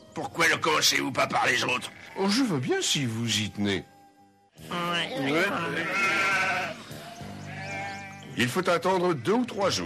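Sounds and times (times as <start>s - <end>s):
speech: 0.2s - 3.9s, 4.6s - 6.3s, 8.4s - 9.8s
sheep bleating in an anthrax vaccination trial: 5.1s - 9.8s.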